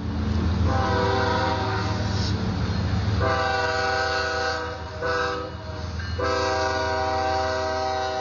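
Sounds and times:
freight train rumbling past: 0.0 - 8.2
freight train horn blasts: 0.6 - 2.4, 3.2 - 8.2.

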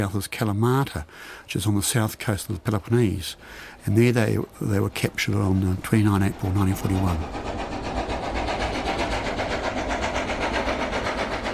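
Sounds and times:
speech: 0.0 - 7.7
train wheels clickety-clack on rails: 3.8 - 11.5.

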